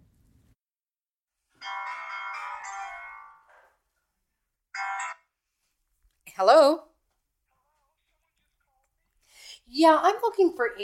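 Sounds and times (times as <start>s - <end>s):
telephone ringing on an outgoing call: 1.6s - 3.7s, 4.8s - 5.4s
speech: 6.4s - 6.9s, 9.8s - 10.8s.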